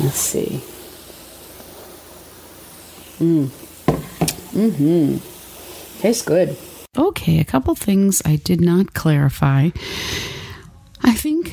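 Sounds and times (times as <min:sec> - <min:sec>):
speech: 0:00.0 - 0:00.8, 0:03.2 - 0:03.6, 0:04.6 - 0:05.3, 0:06.0 - 0:10.4, 0:11.0 - 0:11.5
carbonated drink fizzing after pouring: 0:00.0 - 0:06.9.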